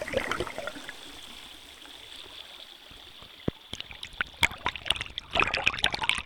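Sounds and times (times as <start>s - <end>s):
underwater trickle of stream water over stones recorded by hydrophone: 0.0s - 6.2s
pebbles dropped into stream plonking underwater: 3.2s - 6.2s.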